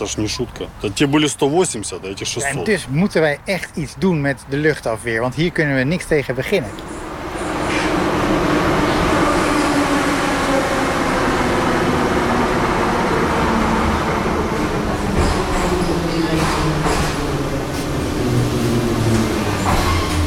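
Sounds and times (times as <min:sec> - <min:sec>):
speech: 0:00.0 - 0:06.9
metro train rumbling through an underground station: 0:04.4 - 0:20.2.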